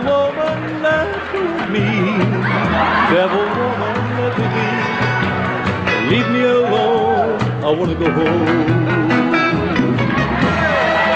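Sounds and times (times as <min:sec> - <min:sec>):
live concert crowd cheering after a song: 0:00.0 - 0:11.1
laughter: 0:01.6 - 0:05.6
speech: 0:07.7 - 0:09.2.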